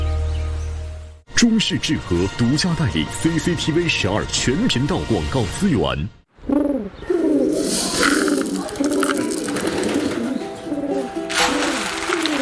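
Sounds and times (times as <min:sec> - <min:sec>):
speech: 0:01.4 - 0:06.2
pigeons cooing: 0:06.4 - 0:12.4
rustling and fluttering noise: 0:07.5 - 0:12.4.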